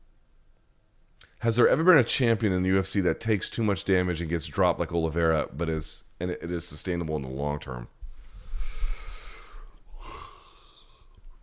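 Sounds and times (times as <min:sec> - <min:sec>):
speech: 0:01.4 - 0:08.0
breathy yawn with a faint voiced groan: 0:08.4 - 0:11.1.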